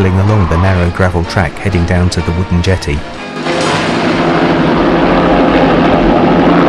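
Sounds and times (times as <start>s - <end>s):
speech: 0.0s - 3.5s
helicopter lifting off from water by a wooden jetty at a lakeside: 3.1s - 6.6s.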